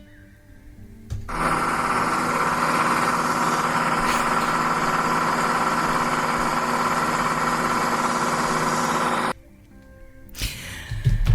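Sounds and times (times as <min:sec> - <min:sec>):
scattered noises: 0:01.3 - 0:09.3
tractor engine chugging: 0:01.3 - 0:09.4.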